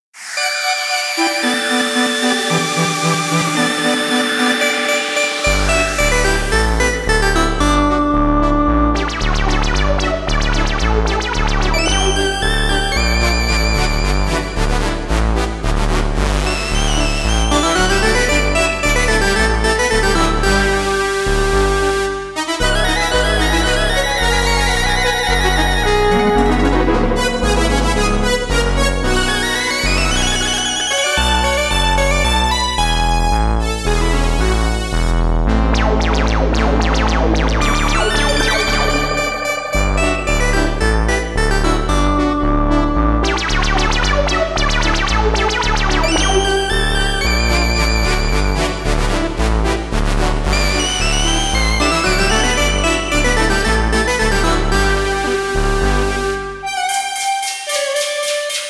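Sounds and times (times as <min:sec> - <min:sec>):
synth expander module playing: 0:00.2 - 0:58.6.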